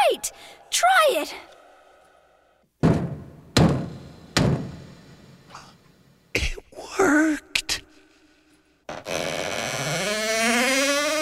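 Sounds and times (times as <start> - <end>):
speech: 0.2 - 1.5
heavy knocks on a solid surface: 2.8 - 4.8
faint creak-like sound: 8.9 - 11.2.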